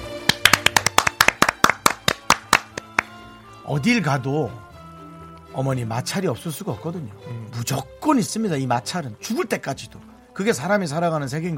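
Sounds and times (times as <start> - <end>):
hands clapping in applause: 0.0 - 3.3
speech: 3.7 - 4.7, 5.5 - 11.5.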